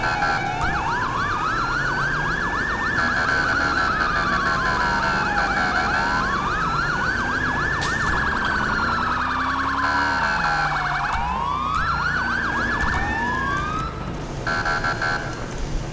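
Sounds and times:
video game emergency vehicle siren wailing: 0.0 - 15.4.

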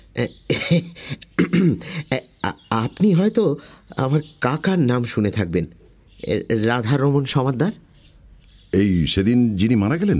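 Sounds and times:
speech: 0.2 - 1.2, 2.8 - 7.9, 8.7 - 10.1
man clearing his throat: 0.5 - 2.0.

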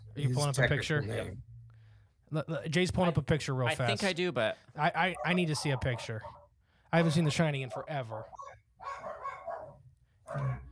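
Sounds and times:
speech: 0.2 - 1.5, 2.3 - 9.0, 10.3 - 10.7
dogs barking: 5.0 - 10.7.

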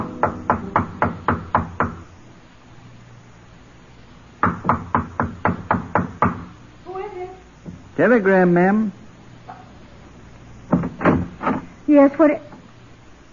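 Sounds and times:
loud knocking on a hotel room door: 0.2 - 2.1, 4.4 - 6.5, 10.7 - 11.4
speech: 8.0 - 9.0, 11.9 - 12.5.

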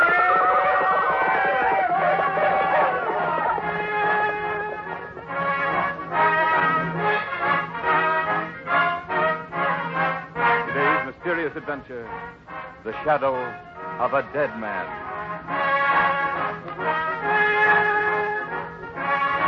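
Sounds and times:
laughter: 0.0 - 5.8, 16.0 - 19.0
horses neighing: 0.0 - 6.0
horses galloping fast with riders: 0.0 - 19.4
speech: 11.7 - 16.2.

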